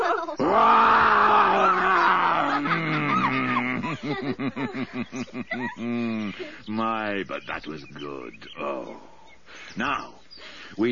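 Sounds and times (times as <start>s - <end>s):
laughter: 0.0s - 6.7s
human voice imitating a lion's roar: 0.4s - 3.8s
speech: 4.2s - 9.1s, 9.8s - 10.8s.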